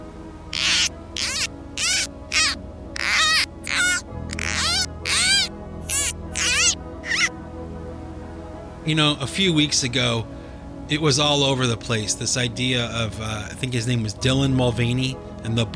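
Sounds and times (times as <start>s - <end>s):
squeaky dolphin-like chirps and whistles in a commercial break bumper: 0.5s - 7.3s
speech: 8.9s - 15.7s.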